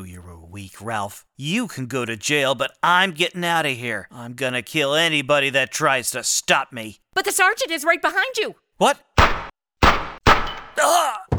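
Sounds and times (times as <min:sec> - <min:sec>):
speech: 0:00.1 - 0:09.1, 0:10.8 - 0:11.3
gunshots: 0:09.2 - 0:10.8.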